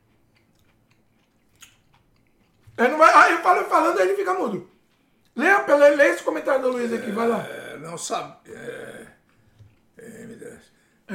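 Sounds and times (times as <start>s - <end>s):
person chewing food with small crunches: 0.0s - 2.8s, 4.7s - 5.4s, 9.2s - 10.2s
speech: 2.8s - 4.7s, 5.4s - 8.8s.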